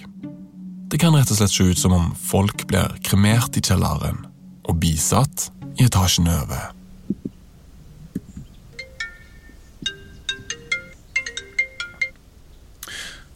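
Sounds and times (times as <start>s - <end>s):
speech: 0.9s - 6.8s
phone ringtone of bright electronic tones: 8.8s - 12.2s.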